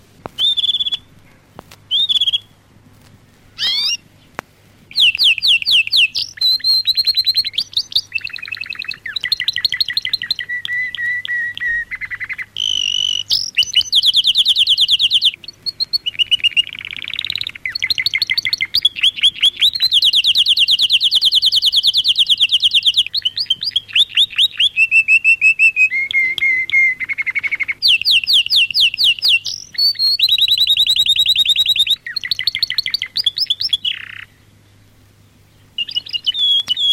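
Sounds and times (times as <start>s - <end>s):
canary singing from a record: 0.0s - 36.9s.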